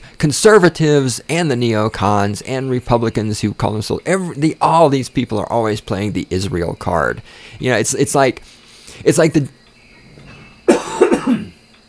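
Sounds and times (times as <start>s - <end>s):
speech: 0.2s - 9.6s
loud harsh cough: 10.2s - 11.6s.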